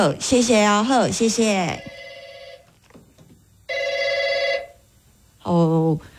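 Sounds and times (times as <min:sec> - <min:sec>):
speech: 0:00.0 - 0:02.0, 0:05.5 - 0:06.1
telephone ringing with electronic trill: 0:01.6 - 0:02.9, 0:03.7 - 0:04.8.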